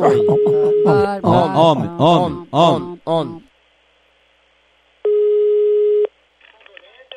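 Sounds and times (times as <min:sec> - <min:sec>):
speech: 0:00.0 - 0:00.5, 0:01.1 - 0:03.5
loud steady mid-pitched telephone call tone while dialing: 0:00.0 - 0:01.0, 0:05.1 - 0:06.1.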